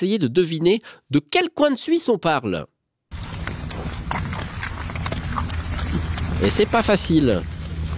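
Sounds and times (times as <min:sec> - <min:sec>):
speech: 0:00.0 - 0:02.7, 0:06.4 - 0:07.5
heavy ox hooves plodding on hard ground: 0:03.1 - 0:07.9
low continuous rumble: 0:03.1 - 0:07.9.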